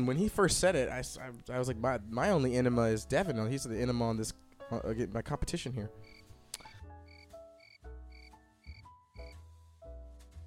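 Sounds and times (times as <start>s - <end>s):
speech: 0.0s - 6.2s
crickets chirping: 6.0s - 9.3s.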